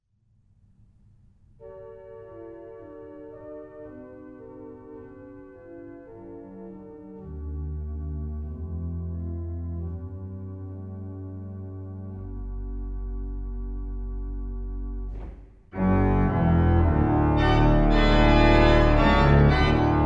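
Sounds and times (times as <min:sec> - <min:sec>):
chords: 0:08.5 - 0:20.0.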